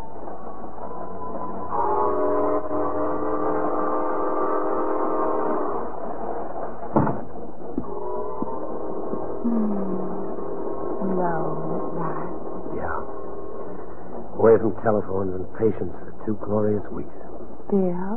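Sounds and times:
passenger train rumbling at a depot: 0.0 - 18.1
passenger train horn blasting in long loud chords: 1.2 - 6.5, 7.8 - 12.3
speech: 14.6 - 18.1.

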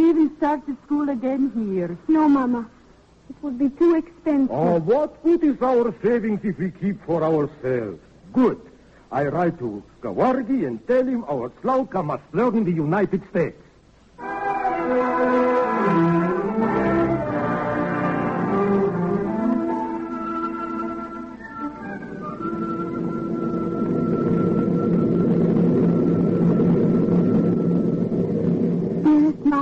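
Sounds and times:
speech: 0.4 - 13.6, 14.2 - 15.5
aeroplane engine drone during a flight to New York: 14.5 - 29.6.

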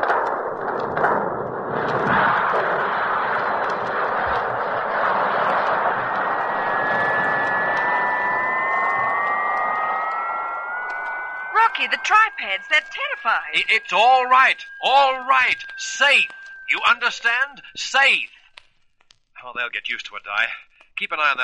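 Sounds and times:
rocket engines firing for low-velocity takeoff: 0.0 - 18.4
high whistling tones: 4.4 - 18.5
speech: 12.0 - 18.4, 19.6 - 21.4.

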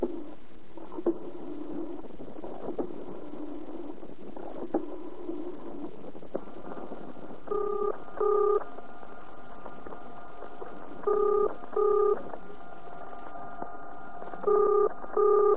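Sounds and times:
hum: 0.0 - 15.5
telephone being dialed with short electronic tone beeps: 7.5 - 8.6, 11.1 - 12.2, 14.5 - 15.5.

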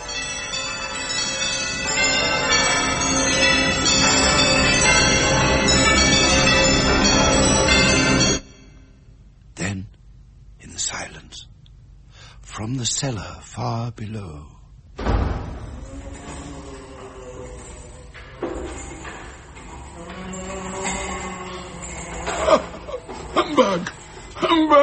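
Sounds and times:
many house bells ringing loudly in a huge empty house: 0.0 - 9.1, 15.5 - 24.8
speech: 12.8 - 14.6.

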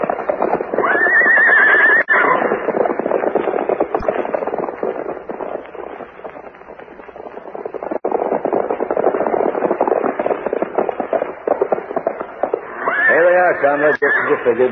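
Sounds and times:
clatter of hooves of several horses at a brisk pace: 0.0 - 14.7
horse whinnying: 0.7 - 2.7, 12.6 - 14.6
speech: 13.7 - 14.7.

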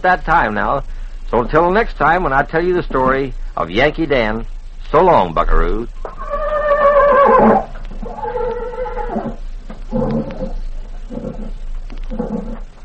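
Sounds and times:
speech: 0.0 - 6.2, 7.4 - 7.7
horse neighing: 6.1 - 11.5.

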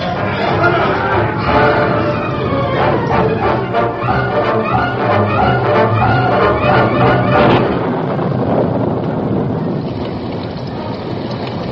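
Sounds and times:
deep rolling rumble of thunder: 0.0 - 11.6
loud steady wind roaring: 0.0 - 11.6.

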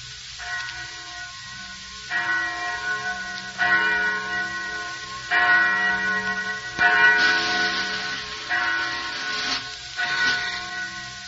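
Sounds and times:
faint hiss: 0.0 - 11.2
church bell tolling: 0.4 - 11.2.

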